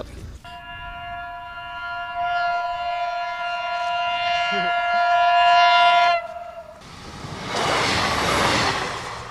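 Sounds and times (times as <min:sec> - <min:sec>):
train horn blast at a railway crossing: 0:00.4 - 0:06.9
train passing at high speed at a railway crossing without lights or a barrier: 0:00.5 - 0:09.2.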